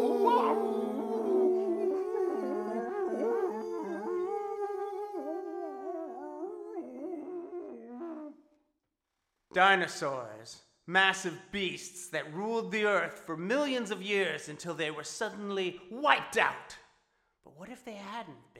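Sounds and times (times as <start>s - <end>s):
chorus of wolves howling: 0.0s - 8.3s
speech: 9.5s - 16.8s, 17.6s - 18.5s.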